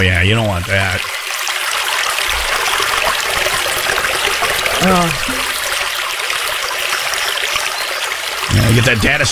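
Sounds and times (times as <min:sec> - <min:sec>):
speech: 0:00.0 - 0:01.2, 0:04.8 - 0:05.4, 0:08.5 - 0:09.3
babbling brook flowing: 0:00.0 - 0:09.3.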